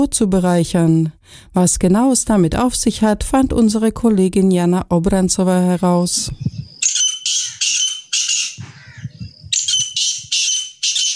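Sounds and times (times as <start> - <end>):
speech: 0.0 - 6.6
low rustling thumps: 6.2 - 6.8, 8.6 - 10.4
grey partridge harsh rasping calls: 6.4 - 11.1.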